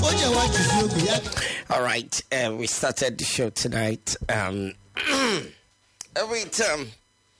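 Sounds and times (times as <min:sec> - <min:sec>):
speech: 0:00.2 - 0:07.0
person clearing throat: 0:05.0 - 0:05.6.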